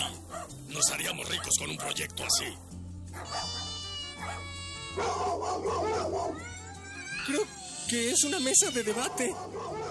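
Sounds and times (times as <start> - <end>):
dog barking in whining yelps: 0.0 - 2.5, 3.1 - 6.6, 8.7 - 9.9
speech: 0.8 - 3.6, 4.2 - 6.6, 7.2 - 9.9.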